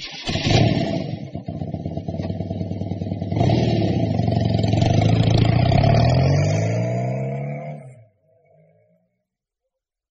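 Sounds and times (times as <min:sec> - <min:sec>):
motorbike engine sputtering and revving: 0:00.1 - 0:08.0.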